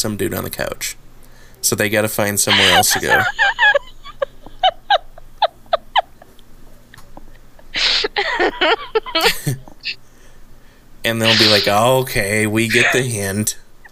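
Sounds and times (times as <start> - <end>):
speech: 0.0 - 1.0, 1.6 - 3.8, 11.1 - 13.6
laughter: 2.5 - 9.7, 11.2 - 11.8, 12.7 - 13.4
person imitating goose honks: 11.2 - 11.8.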